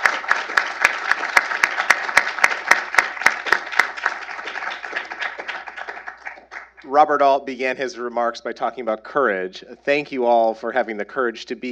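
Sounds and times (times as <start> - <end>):
audience applause after speakers: 0.0 - 6.9
speech: 6.9 - 11.6.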